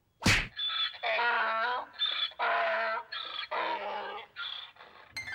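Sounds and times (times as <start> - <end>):
punching thwack of a donkey being punched: 0.2 - 0.5
agitated donkey braying and groaning: 0.5 - 5.2.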